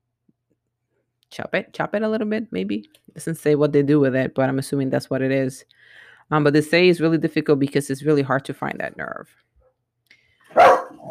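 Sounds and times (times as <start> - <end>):
speech: 1.4 - 9.4
single loud dog bark: 10.5 - 11.0.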